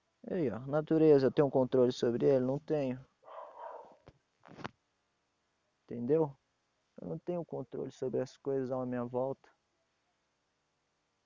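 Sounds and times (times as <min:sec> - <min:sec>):
speech: 0:00.2 - 0:03.1, 0:05.9 - 0:06.4, 0:07.0 - 0:09.6
dog barking: 0:03.2 - 0:04.0.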